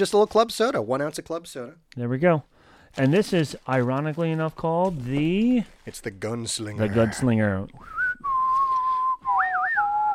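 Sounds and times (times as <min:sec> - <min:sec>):
speech: 0:00.0 - 0:08.0
two people whistling a tune together: 0:07.8 - 0:10.1.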